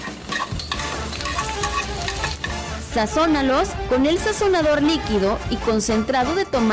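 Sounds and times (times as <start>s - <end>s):
onion, garlic, chilies and tomatoes frying in hot oil: 0.0s - 2.5s
scraping stirring: 0.0s - 2.8s
speech: 3.0s - 6.7s.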